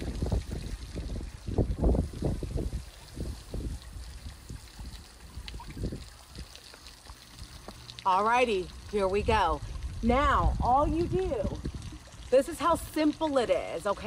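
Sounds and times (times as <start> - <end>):
wind noise on the microphone: 0.0 - 6.6, 9.0 - 13.3
pond water splashing outdoors in the early morning: 0.0 - 14.0
speech: 8.1 - 11.6, 12.3 - 14.0.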